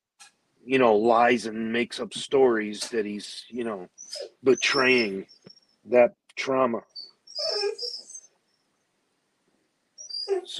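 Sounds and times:
speech: 0.7s - 8.0s, 10.3s - 10.5s
dog giving a yelping whimper: 3.8s - 5.6s, 6.9s - 8.3s, 10.0s - 10.5s.

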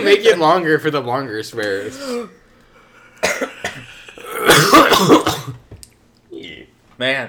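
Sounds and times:
speech: 0.1s - 2.4s, 3.2s - 5.6s, 6.4s - 7.2s
person coughing into the microphone: 3.2s - 5.7s.

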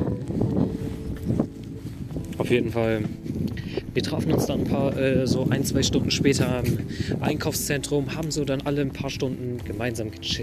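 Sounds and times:
wind buffeting the microphone: 0.0s - 10.4s
speech: 2.4s - 3.2s, 4.0s - 10.4s.

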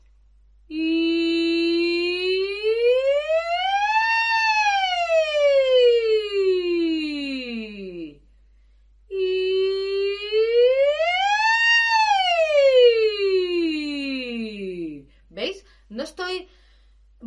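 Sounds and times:
singer's ascending vocal siren glides on an ee vowel: 0.7s - 8.2s, 9.1s - 15.0s.

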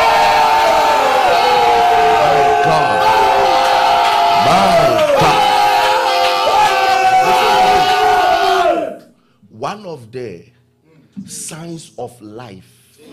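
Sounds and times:
large audience shouting loudly: 0.0s - 9.0s
speech: 11.2s - 13.1s.

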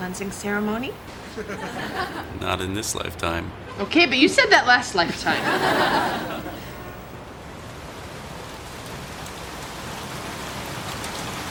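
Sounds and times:
steady rain striking surfaces: 0.0s - 11.4s
speech: 0.1s - 6.5s
laughter: 1.1s - 3.2s, 5.0s - 7.2s.

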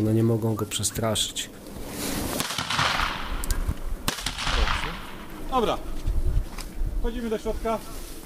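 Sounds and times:
speech: 0.0s - 2.2s, 5.6s - 6.0s, 7.0s - 8.0s
busy outdoor noise: 0.0s - 8.2s
black powder gunshots during a dog's retrieving test: 2.4s - 5.3s.

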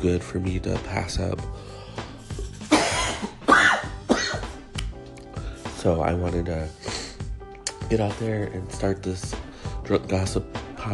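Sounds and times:
speech: 0.0s - 1.8s, 5.8s - 7.0s, 7.9s - 10.9s
quiet breaths: 1.5s - 2.4s, 5.3s - 5.7s, 9.4s - 9.8s
harsh throaty coughs: 2.6s - 4.6s.

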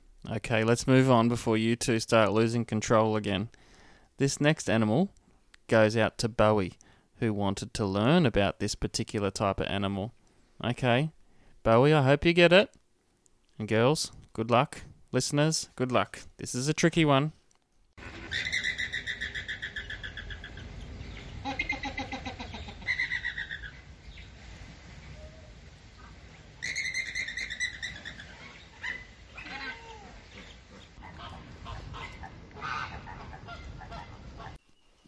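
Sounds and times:
speech: 0.2s - 3.6s, 4.2s - 12.8s, 13.6s - 17.4s, 18.3s - 18.6s
flock of flamingos honking and calling: 18.0s - 24.0s, 25.1s - 34.6s.

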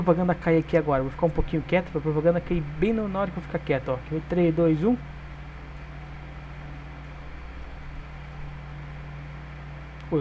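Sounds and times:
speech: 0.0s - 5.2s
electric fan whirring with a low hum: 0.0s - 10.1s.

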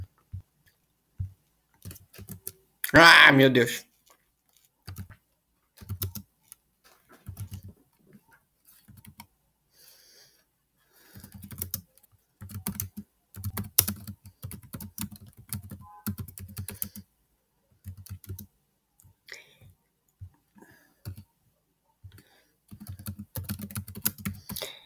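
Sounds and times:
rapid typing on a computer keyboard: 1.8s - 2.6s, 4.8s - 5.2s, 5.8s - 6.3s, 7.2s - 7.8s, 8.8s - 9.3s, 11.1s - 17.1s, 17.8s - 18.5s, 21.0s - 21.3s, 22.1s - 24.6s
speech: 2.9s - 3.9s.

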